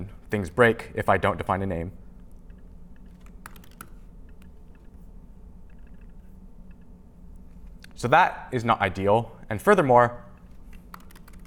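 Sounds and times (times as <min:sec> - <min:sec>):
low hum: 0:00.0 - 0:11.4
speech: 0:00.3 - 0:02.0, 0:08.0 - 0:10.2
typing on a computer keyboard: 0:02.4 - 0:04.9, 0:10.4 - 0:11.4.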